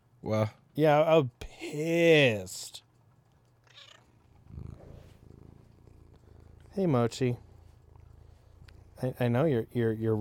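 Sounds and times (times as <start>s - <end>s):
speech: 0.2s - 2.8s, 6.8s - 7.4s, 9.0s - 10.1s
cat purring: 2.5s - 10.1s
cat chirp: 3.6s - 4.8s.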